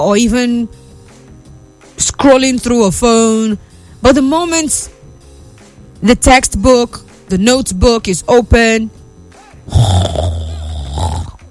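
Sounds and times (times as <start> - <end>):
speech: 0.0 - 0.8, 2.0 - 5.0, 6.0 - 9.0, 9.7 - 10.3
loud low rumbling snore: 9.7 - 11.4.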